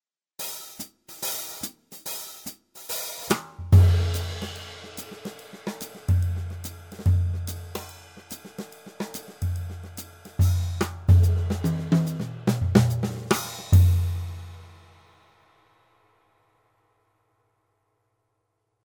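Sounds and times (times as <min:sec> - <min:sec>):
jazz funk drums: 0:00.5 - 0:14.6.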